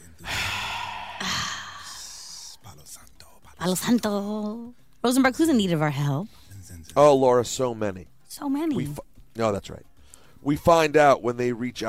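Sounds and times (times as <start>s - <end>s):
person taking a slow deep breath in and long airy exhale: 0.2s - 2.6s
speech: 2.9s - 11.8s.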